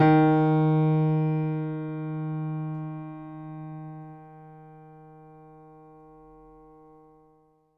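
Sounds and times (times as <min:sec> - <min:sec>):
stereo acoustic piano: 0:00.0 - 0:07.0.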